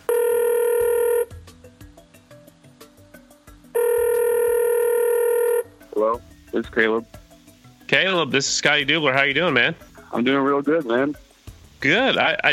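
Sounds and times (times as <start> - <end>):
telephone ringing on an outgoing call: 0.0 - 1.4, 3.8 - 5.8
speech: 6.1 - 7.2, 7.9 - 11.2, 11.8 - 12.5.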